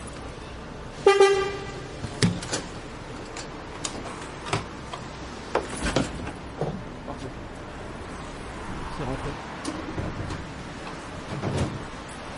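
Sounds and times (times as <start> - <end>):
bus pulling up at the stop: 0.0 - 12.3
steady outdoor traffic rumble: 0.0 - 12.3
brief tonal bus toot: 1.0 - 2.0
speech: 1.1 - 1.6.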